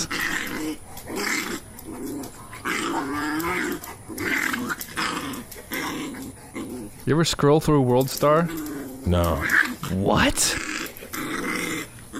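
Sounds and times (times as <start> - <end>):
dog growling and snarling in a video being watched: 0.0 - 7.4, 8.0 - 12.1
speech: 7.1 - 10.7.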